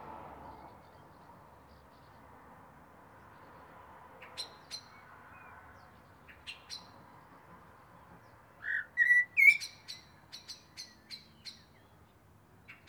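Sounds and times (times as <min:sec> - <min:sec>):
Eurasian blackbird Turdus merula singing: 0:08.6 - 0:11.8.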